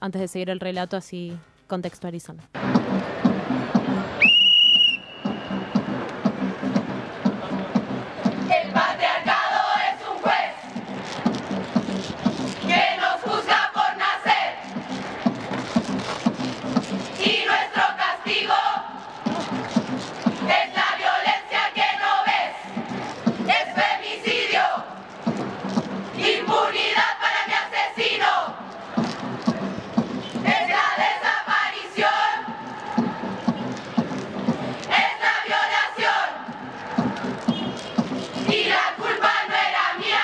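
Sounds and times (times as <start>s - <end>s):
speech: 0.0s - 3.1s
steady outdoor noise: 2.5s - 40.2s
sharp whistle: 4.2s - 5.9s, 37.5s - 37.9s
large crowd of women chanting a protest song against police violence: 8.5s - 10.8s, 12.6s - 14.8s, 17.2s - 19.4s, 20.3s - 25.1s, 26.2s - 28.8s, 30.4s - 33.6s, 34.9s - 37.1s, 38.4s - 40.2s.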